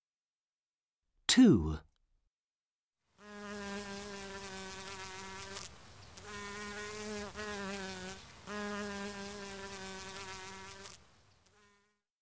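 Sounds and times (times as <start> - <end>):
speech: 1.3 - 1.9
bee buzzing: 3.2 - 11.9.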